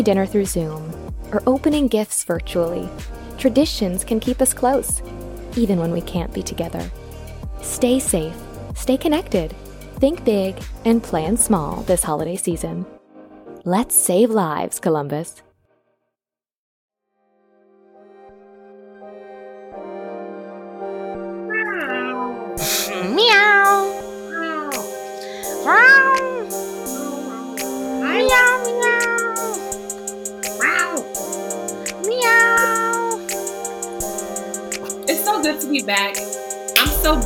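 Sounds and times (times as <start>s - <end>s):
speech: 0.0s - 7.0s, 7.6s - 13.0s, 13.6s - 15.4s, 35.4s - 36.4s, 37.0s - 37.2s
cat meowing: 21.5s - 31.2s, 31.9s - 33.3s.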